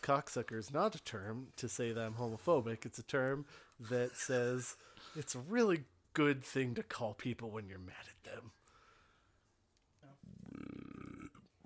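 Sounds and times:
speech: 0:00.0 - 0:08.6
short throaty gulp: 0:10.2 - 0:11.6
loud drawn-out deep rumbling burp: 0:10.3 - 0:11.6.

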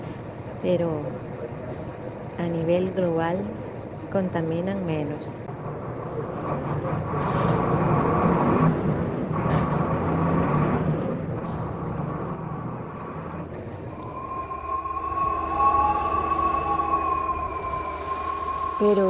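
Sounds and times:
loud rumble and engine drone inside a moving bus: 0:00.0 - 0:19.0
speech: 0:00.6 - 0:01.2, 0:02.4 - 0:05.5, 0:06.5 - 0:08.0
high whine of bus gear and motor tones: 0:13.6 - 0:19.0.

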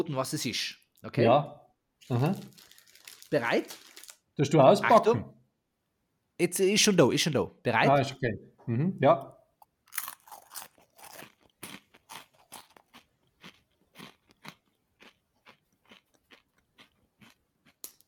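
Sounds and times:
speech: 0:00.0 - 0:02.7, 0:03.3 - 0:05.4, 0:06.4 - 0:09.4
sesame puff-pastry cracker stick being bitten and chewed: 0:09.6 - 0:18.0.

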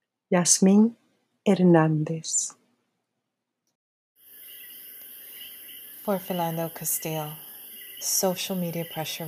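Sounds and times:
speech: 0:00.3 - 0:02.6, 0:06.1 - 0:09.2
coqui tree frogs calling at night in Puerto Rico: 0:04.2 - 0:09.2
crickets chirping at night in Puerto Rico: 0:04.2 - 0:09.2.

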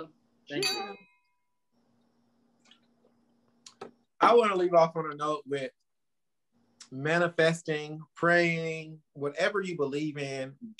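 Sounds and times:
speech: 0:00.0 - 0:01.1, 0:04.2 - 0:05.8, 0:06.9 - 0:10.7
glasses clinking together in a toast: 0:00.6 - 0:01.2.

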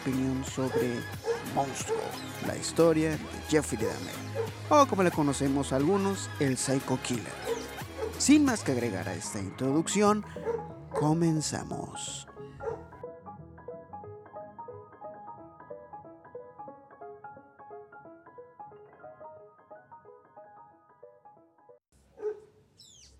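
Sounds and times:
speech: 0:00.0 - 0:12.3
soft melodic music: 0:00.0 - 0:21.8
dog barking sharply: 0:00.6 - 0:02.2, 0:03.8 - 0:04.6, 0:07.4 - 0:08.2, 0:10.3 - 0:11.1, 0:12.6 - 0:12.9, 0:22.1 - 0:22.6.

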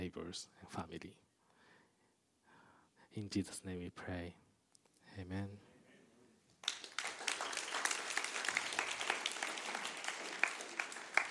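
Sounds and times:
speech: 0:00.1 - 0:01.2, 0:03.2 - 0:04.4, 0:05.2 - 0:05.7
audience applause: 0:06.6 - 0:11.3.

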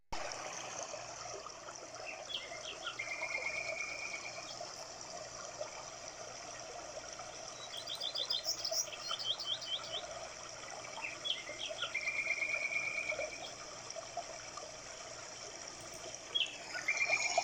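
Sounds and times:
flowing water: 0:00.1 - 0:17.4
birds chirping and trilling in a forest: 0:02.0 - 0:04.8, 0:07.4 - 0:10.2, 0:11.0 - 0:13.6, 0:15.9 - 0:17.4.

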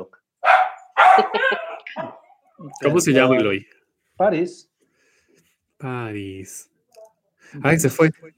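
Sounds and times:
small dog barking at the doorbell: 0:00.4 - 0:02.4
speech: 0:01.2 - 0:04.7, 0:05.8 - 0:06.7, 0:07.5 - 0:08.3.

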